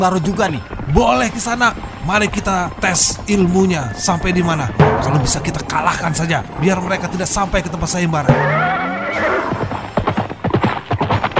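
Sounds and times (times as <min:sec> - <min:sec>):
speech: 0:00.0 - 0:09.3
horse hooves clip-clopping: 0:00.0 - 0:11.3
ridden horse whinnying loudly: 0:08.3 - 0:09.8.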